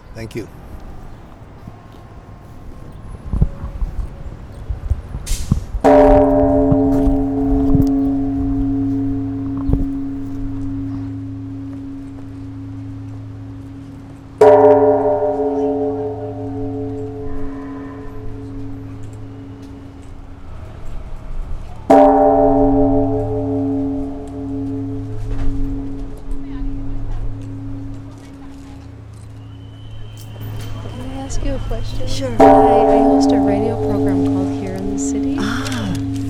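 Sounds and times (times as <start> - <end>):
speech: 0.2 - 0.6
large memorial bell tolling: 5.8 - 20.7, 21.9 - 36.2.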